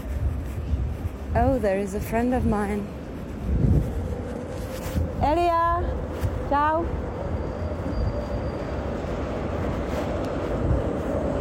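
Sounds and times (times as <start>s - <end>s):
tram rumbling past at a tram stop: 0.0s - 11.3s
speech: 1.3s - 3.6s, 5.2s - 7.0s
faint metallic squeals of a tram: 7.2s - 9.1s.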